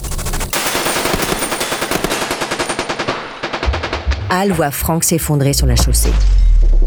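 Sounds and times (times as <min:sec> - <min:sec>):
police automatic gunfire bursts: 0:00.1 - 0:04.2
heavy gunshot bangs: 0:00.5 - 0:04.4
speech: 0:04.3 - 0:06.8.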